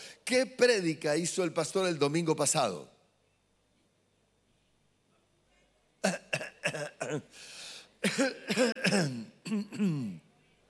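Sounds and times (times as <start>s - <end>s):
speech: 0.3s - 3.0s, 7.1s - 10.2s
person coughing and clearing their throat: 6.0s - 7.3s, 8.0s - 10.2s.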